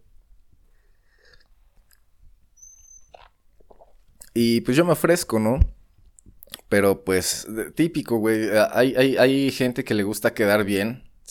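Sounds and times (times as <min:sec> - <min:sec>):
brief high squeak: 0:02.6 - 0:03.2
soft swallow: 0:03.1 - 0:04.3
person sipping coffee with wet slurping: 0:03.2 - 0:04.3
speech: 0:04.4 - 0:05.8, 0:06.7 - 0:11.2.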